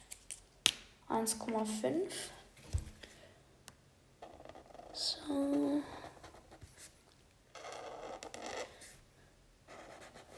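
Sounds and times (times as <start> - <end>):
speech: 1.1 - 2.4, 5.3 - 6.0
thick 1.5 pen scratching across paper drawing hair: 4.2 - 5.0, 7.5 - 8.9, 9.7 - 10.3.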